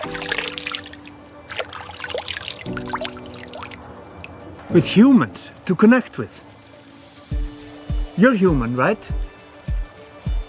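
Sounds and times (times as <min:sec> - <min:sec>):
water trickling and splashing: 0:00.0 - 0:04.6
speech: 0:04.7 - 0:06.5, 0:08.2 - 0:09.2.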